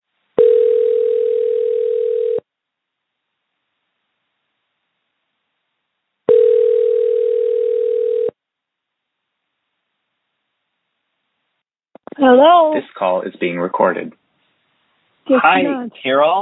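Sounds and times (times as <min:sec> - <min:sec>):
telephone ringback tone: 0:00.4 - 0:02.4, 0:06.3 - 0:08.4
speech: 0:12.2 - 0:14.2, 0:15.3 - 0:16.3.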